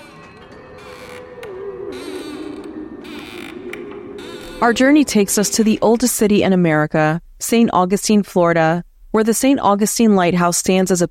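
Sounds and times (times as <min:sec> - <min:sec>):
old wooden ship hull creaking and groaning: 0:00.0 - 0:06.3
soft rushing bursts: 0:00.1 - 0:07.4
speech: 0:04.6 - 0:11.1.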